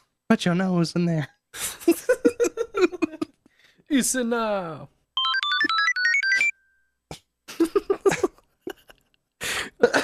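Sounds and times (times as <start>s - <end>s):
speech: 0.3s - 2.3s, 3.9s - 5.0s
laughter: 1.7s - 3.4s, 7.5s - 9.2s
tablet incoming-call ringtone with bright stepped tones: 5.2s - 6.9s.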